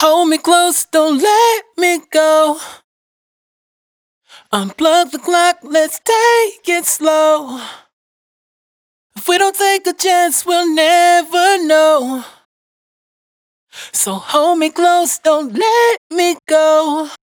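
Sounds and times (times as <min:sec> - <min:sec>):
person singing dry raw vocal hook in E-flat: 0:00.0 - 0:02.8, 0:04.4 - 0:07.9, 0:09.2 - 0:12.4, 0:13.8 - 0:17.2.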